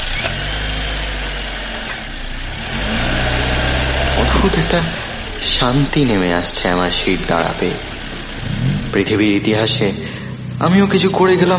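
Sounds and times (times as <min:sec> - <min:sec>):
car engine starting and revving: 0:00.0 - 0:11.5
speech: 0:04.4 - 0:11.5.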